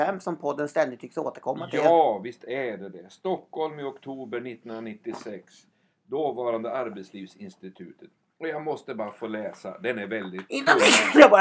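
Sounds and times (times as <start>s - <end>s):
speech: 0.0s - 11.4s
sharp sneeze: 10.7s - 11.3s.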